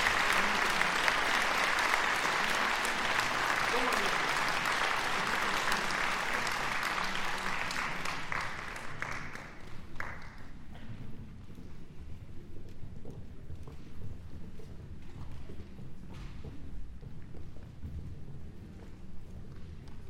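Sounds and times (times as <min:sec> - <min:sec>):
faint murmur of voices: 0:00.0 - 0:09.6
large audience applauding after a choir performance: 0:00.0 - 0:10.5.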